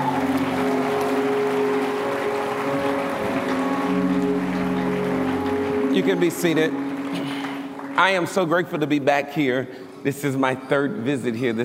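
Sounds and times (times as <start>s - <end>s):
sustained instrumental tones: 0.0s - 9.1s
large church audience clapping in praise: 0.0s - 9.5s
speech: 6.0s - 6.8s, 8.0s - 11.6s.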